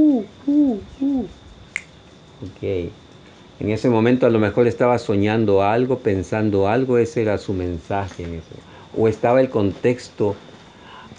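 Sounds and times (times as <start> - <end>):
human voice imitating an owl hooting: 0.0 - 1.4
speech: 2.6 - 3.0, 3.6 - 10.5.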